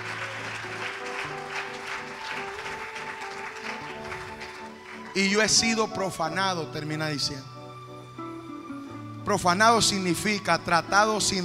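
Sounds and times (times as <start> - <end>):
congregation applauding in church: 0.0 - 6.3
speech: 5.2 - 7.5, 9.3 - 11.4.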